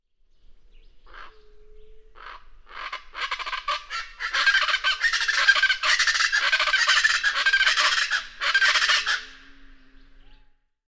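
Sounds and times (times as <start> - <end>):
Rufous-bellied Chachalaca calling: 1.1 - 9.6.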